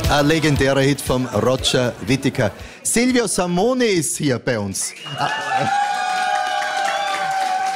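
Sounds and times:
speech: 0:00.1 - 0:05.8
audience applauding and cheering: 0:04.9 - 0:07.7.

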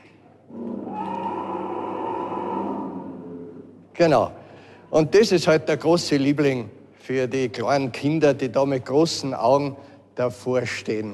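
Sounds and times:
animatronic Allosaurus dinosaur figure roaring: 0:00.5 - 0:03.8
speech: 0:04.0 - 0:11.1.

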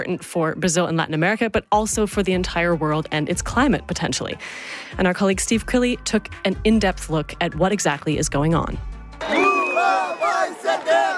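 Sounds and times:
speech: 0:00.0 - 0:09.4
crowd of supporters cheering and chanting at a political rally: 0:09.2 - 0:11.1.

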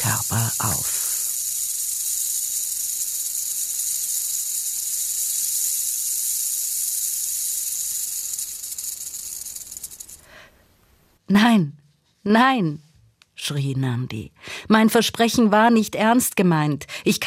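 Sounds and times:
snake hissing: 0:00.0 - 0:10.4
speech: 0:00.3 - 0:01.0, 0:11.3 - 0:11.7, 0:12.3 - 0:12.8, 0:13.5 - 0:17.2.

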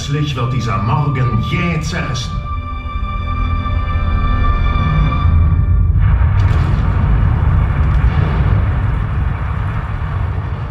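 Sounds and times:
steady tonal hum: 0:00.0 - 0:10.6
speech: 0:00.1 - 0:02.4
low rumble of a simulated volcanic eruption in a multisensory exhibit: 0:04.8 - 0:10.6
scattered bangs of a simulated volcanic eruption: 0:05.9 - 0:10.6.

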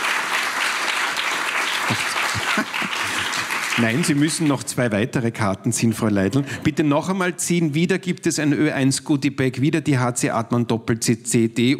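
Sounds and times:
audience applause: 0:00.0 - 0:04.7
laughter: 0:01.8 - 0:04.2, 0:06.0 - 0:07.0
speech: 0:03.8 - 0:11.7.

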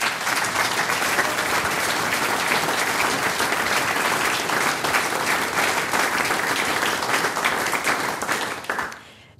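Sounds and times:
large audience applause in a parish hall: 0:00.0 - 0:09.0.

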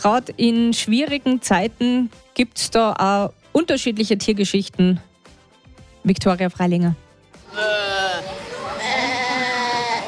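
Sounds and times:
speech: 0:00.0 - 0:05.1, 0:06.0 - 0:07.8
mother goat bleating loudly for kid: 0:07.5 - 0:10.0.

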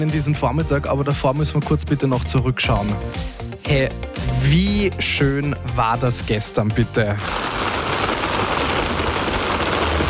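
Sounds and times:
speech: 0:00.0 - 0:07.8
steady summer rain pouring: 0:07.2 - 0:10.0.

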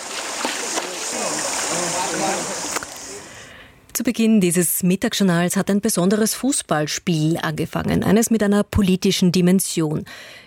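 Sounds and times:
elephants splashing while bathing in a river at an elephant park: 0:00.0 - 0:03.3
speech: 0:04.0 - 0:10.4.

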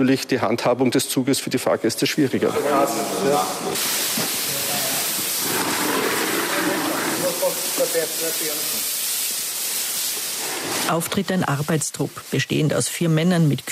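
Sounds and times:
speech: 0:00.0 - 0:04.1, 0:07.9 - 0:09.0, 0:10.6 - 0:13.6
pressurized hoses spraying foam to clean a train: 0:02.1 - 0:13.6
water splashing: 0:03.4 - 0:12.6.

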